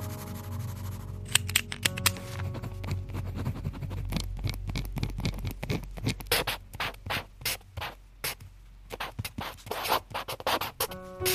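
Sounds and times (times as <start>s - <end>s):
quiet hum: 0.1s - 11.2s
pen scratching on paper in a notebook: 2.5s - 8.4s, 8.9s - 11.3s.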